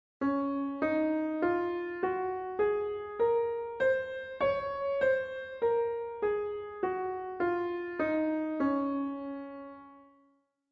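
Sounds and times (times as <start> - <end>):
D flat scale on piano: 0.2 - 10.2.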